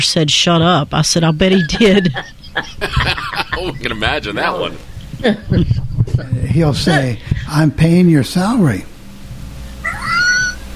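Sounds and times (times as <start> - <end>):
speech: 0.0 - 8.9
low rumble: 0.0 - 10.7
laughter: 1.4 - 7.7
cat meowing: 9.8 - 10.6.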